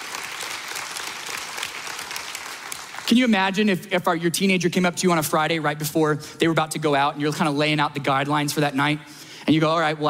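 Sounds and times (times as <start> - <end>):
audience applause at a sermon: 0.0 - 3.3
speech: 3.1 - 10.0.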